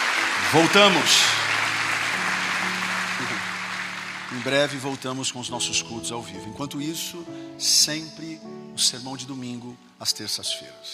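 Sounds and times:
congregation applauding at a live church service: 0:00.0 - 0:06.0
speech: 0:00.5 - 0:01.4, 0:04.3 - 0:10.9.

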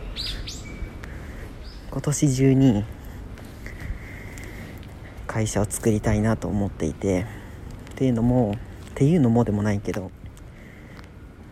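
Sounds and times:
bird chirping: 0:00.0 - 0:02.2
steady low rumble: 0:00.0 - 0:11.5
speech: 0:02.0 - 0:03.0, 0:05.4 - 0:07.4, 0:08.0 - 0:10.2.

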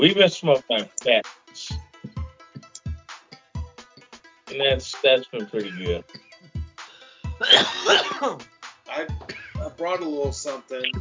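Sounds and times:
speech: 0:00.0 - 0:01.8, 0:04.5 - 0:06.2, 0:07.4 - 0:11.0
person clearing throat: 0:07.4 - 0:08.4, 0:09.2 - 0:09.6
person coughing: 0:07.4 - 0:08.4, 0:09.2 - 0:09.7.

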